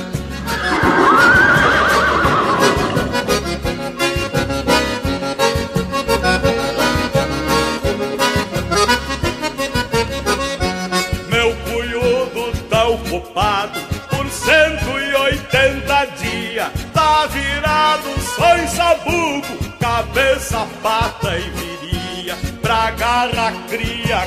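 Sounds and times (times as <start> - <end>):
rhythmic music: 0.0 - 24.2
stallion neighing: 0.4 - 4.2.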